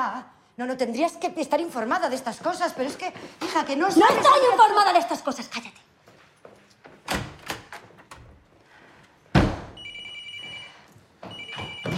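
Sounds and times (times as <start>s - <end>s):
speech: 0.0s - 5.9s
telephone bell ringing: 9.8s - 11.9s.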